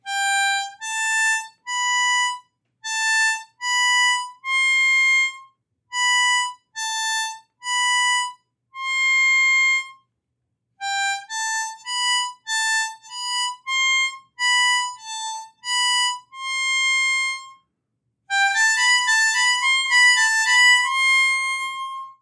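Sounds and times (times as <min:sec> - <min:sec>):
harmonica playing ascending triplets: 0:00.0 - 0:10.0, 0:10.8 - 0:17.6, 0:18.3 - 0:22.2.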